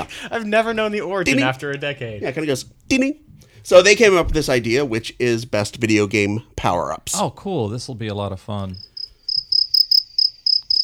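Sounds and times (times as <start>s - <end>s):
speech: 0.0s - 8.9s
cricket chirping: 8.8s - 10.8s.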